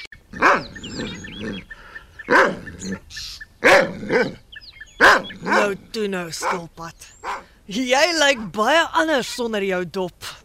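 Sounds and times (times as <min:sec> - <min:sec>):
faint birdsong chirping: 0:00.0 - 0:10.4
big dog barking loudly and deeply: 0:00.3 - 0:01.7, 0:02.3 - 0:03.0, 0:03.6 - 0:04.4, 0:05.0 - 0:05.8, 0:06.4 - 0:07.5
speech: 0:00.8 - 0:03.3, 0:06.0 - 0:10.4.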